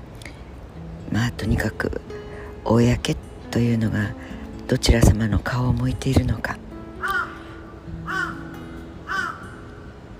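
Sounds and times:
low steady hum: 0.0 - 10.1
speech: 1.1 - 6.6
crow cawing: 7.0 - 9.9.

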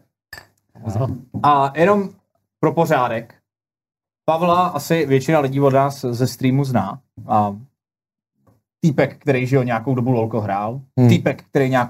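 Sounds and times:
beer glasses clinking in a toast: 0.4 - 0.6
speech: 0.8 - 3.4, 4.3 - 7.7, 8.8 - 11.8.

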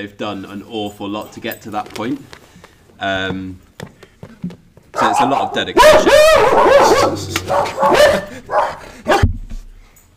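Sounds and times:
speech: 0.0 - 2.4, 3.0 - 3.6, 5.2 - 8.8
dogs going past a studio barking: 4.9 - 9.3.

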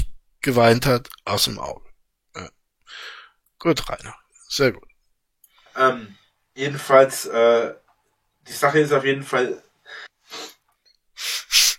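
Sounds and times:
speech: 0.4 - 4.9, 5.8 - 7.8, 8.5 - 10.5
quick breathy nasal sniffles: 9.9 - 10.6, 11.2 - 11.7.

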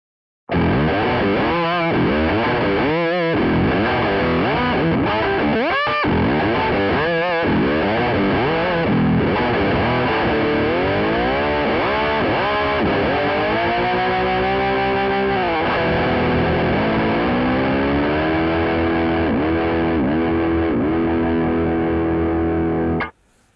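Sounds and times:
distorted electric guitar through an octave pitch-shifter pedal: 0.5 - 23.2.

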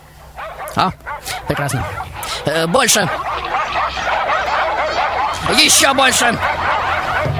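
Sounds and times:
many dogs barking and yapping: 0.0 - 7.3
speech: 0.8 - 4.1, 5.4 - 7.3
laughter: 1.2 - 7.3.

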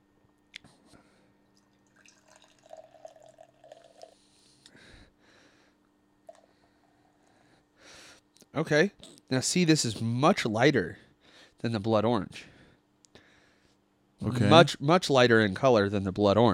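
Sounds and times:
low steady hum: 0.0 - 16.5
last drops of a drink dripping and trickling from a glass: 1.5 - 4.2
speech: 8.6 - 11.0, 11.6 - 12.5, 14.2 - 16.5.

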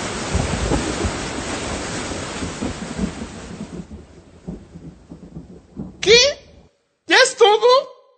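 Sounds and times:
heavy rain hissing in a brief rain shower: 0.0 - 4.0
quieter rain patter with scattered drips: 0.0 - 6.6
wind gusts: 0.0 - 6.7
low thunder rumbles: 0.0 - 6.8.

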